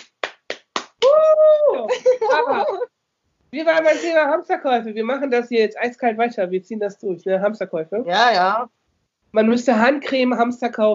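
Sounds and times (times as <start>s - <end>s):
hand claps: 0.0s - 1.4s
laughter: 1.7s - 2.9s
speech: 3.5s - 10.9s.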